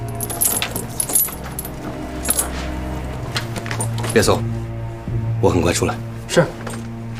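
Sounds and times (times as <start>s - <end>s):
keys jangling while unlocking a door: 0.1s - 4.4s
speech: 4.2s - 4.7s, 5.4s - 6.8s.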